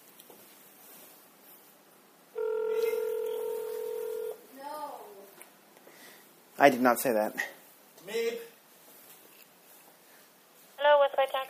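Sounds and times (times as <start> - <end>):
electronic telephone keypad tone: 2.4 - 4.4
speech: 6.6 - 8.5.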